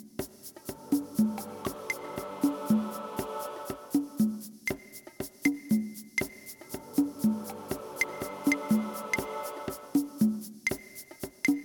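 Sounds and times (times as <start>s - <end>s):
dance rhythm: 0.3s - 5.4s, 6.1s - 11.6s.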